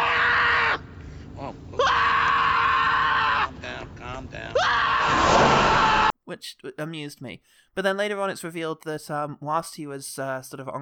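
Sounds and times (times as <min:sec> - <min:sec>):
person imitating a character screaming inside an ambulance: 0:00.0 - 0:00.8, 0:01.4 - 0:03.8, 0:04.6 - 0:06.1
breathy pauses: 0:01.0 - 0:01.4, 0:07.4 - 0:07.8
speech: 0:06.4 - 0:10.8.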